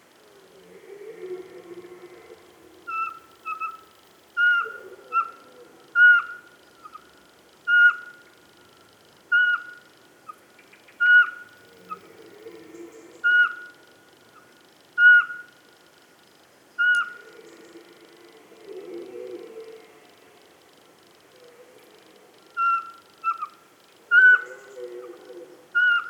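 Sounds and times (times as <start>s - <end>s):
Eurasian pygmy owl whistling from the top of a spruce: 2.9s - 3.8s, 4.4s - 5.4s, 6.0s - 7.0s, 7.7s - 8.2s, 9.3s - 9.8s, 11.0s - 12.0s, 13.2s - 13.7s, 15.0s - 15.5s, 16.8s - 17.3s, 22.6s - 25.1s, 25.8s - 26.0s.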